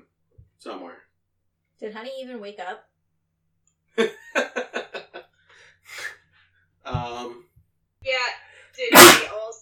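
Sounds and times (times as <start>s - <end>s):
speech: 0.6s - 1.0s, 1.8s - 2.9s, 4.0s - 4.8s
laughter: 4.0s - 5.3s
person sneezing: 8.9s - 9.4s.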